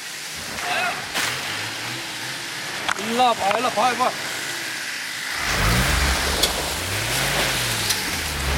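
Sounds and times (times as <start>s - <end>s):
overloaded 4x4 cargo vehicle engine revving stuck in icy slush: 0.3s - 8.5s
voices: 0.4s - 1.2s, 2.8s - 4.3s.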